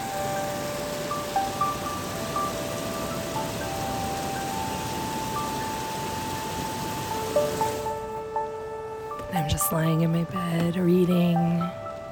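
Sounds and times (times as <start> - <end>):
heavy rain pouring on a backyard: 0.0 - 8.2
speech: 9.4 - 11.8.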